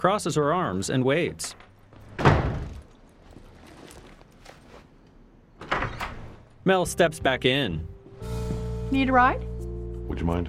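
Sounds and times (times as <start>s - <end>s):
speech: 0.0s - 2.3s, 6.6s - 7.9s, 8.9s - 9.5s, 10.1s - 10.4s
front door slamming shut as someone leaves: 2.0s - 2.9s, 5.6s - 6.4s.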